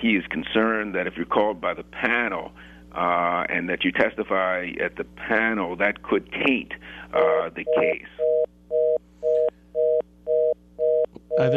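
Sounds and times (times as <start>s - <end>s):
speech: 0.0s - 8.4s, 11.4s - 11.5s
low constant hum: 0.0s - 11.5s
phone line repeating beep tone: 7.2s - 11.5s.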